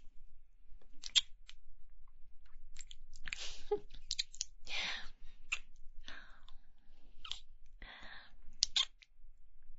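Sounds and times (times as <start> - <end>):
soft wet kissing sounds: 1.0 - 1.3, 3.3 - 4.5, 8.6 - 8.9.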